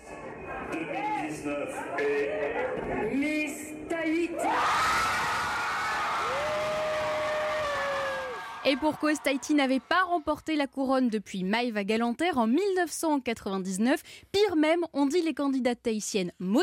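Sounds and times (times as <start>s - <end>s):
speech: 0.7s - 5.2s, 8.6s - 16.6s
high-pitched scream: 4.4s - 8.8s
crowd in Tahiti cheering with whoops and shrieks of joy: 4.4s - 10.2s.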